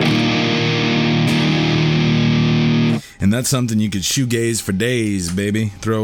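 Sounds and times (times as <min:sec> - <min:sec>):
electric guitar chord through a Xenia overdrive pedal: 0:00.0 - 0:03.0
speech: 0:03.3 - 0:06.0.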